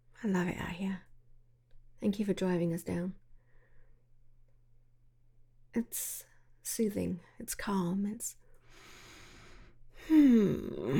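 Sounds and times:
speech: 0.2s - 1.1s, 2.0s - 3.2s, 5.8s - 8.9s, 10.0s - 10.9s
person yawning: 10.0s - 10.9s.

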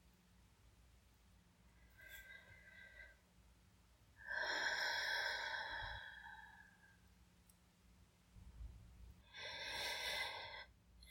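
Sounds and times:
slow deep breathing: 1.9s - 3.3s, 4.2s - 7.1s, 9.2s - 10.8s.

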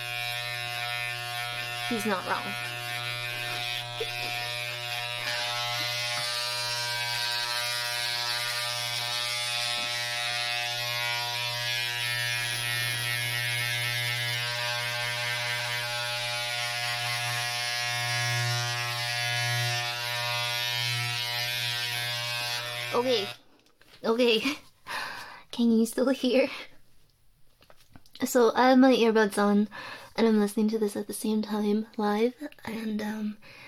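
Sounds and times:
electric hair clippers giving a pet a haircut at home: 0.0s - 23.4s
speech: 1.9s - 2.7s, 23.0s - 23.3s, 24.0s - 24.6s, 25.6s - 26.7s, 28.3s - 33.6s.

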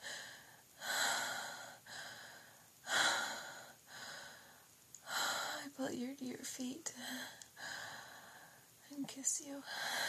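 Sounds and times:
heavy breathing from someone catching their breath: 0.0s - 5.7s, 7.0s - 8.7s, 9.6s - 10.0s
speech: 5.8s - 7.4s, 8.9s - 10.0s.

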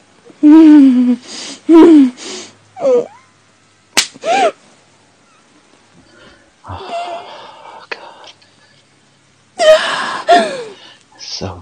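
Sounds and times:
drawn-out moaning vocal sounds: 0.4s - 2.2s, 6.6s - 7.6s, 9.6s - 10.8s
speech: 0.4s - 3.2s
sharp slap on skin: 4.0s - 4.2s.

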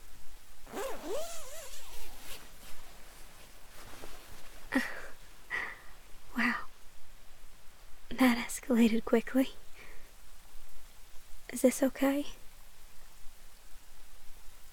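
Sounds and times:
soft rustling: 0.0s - 5.5s
zipper being zipped up: 0.7s - 3.0s
speech: 8.2s - 9.6s, 11.6s - 12.4s.

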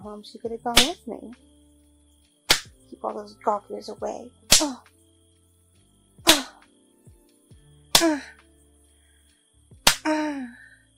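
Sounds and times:
speech: 0.0s - 1.6s, 3.0s - 4.9s, 8.0s - 8.4s, 10.1s - 10.6s
hand slapping skin: 0.8s - 1.0s, 2.5s - 2.8s, 4.5s - 4.9s, 6.2s - 6.7s, 7.9s - 8.2s, 9.8s - 10.1s.

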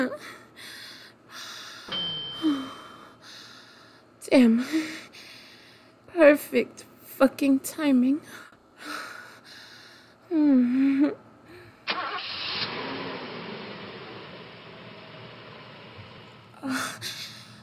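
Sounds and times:
speech: 0.0s - 0.4s, 4.3s - 5.0s, 6.2s - 9.0s, 10.3s - 11.2s, 16.6s - 17.1s
car engine running while driving: 11.9s - 16.6s
road noise: 12.0s - 16.6s.

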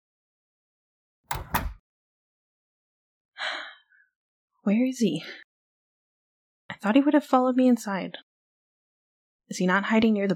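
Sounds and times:
apartment door latch and handle clunks: 1.3s - 1.8s
speech: 4.6s - 5.4s, 6.8s - 8.3s, 9.5s - 10.3s.

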